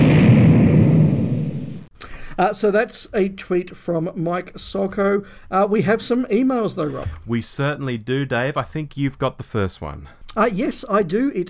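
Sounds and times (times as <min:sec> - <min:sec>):
explosion sound effect with deep booming rumble: 0:00.0 - 0:01.9
speech: 0:02.4 - 0:11.4.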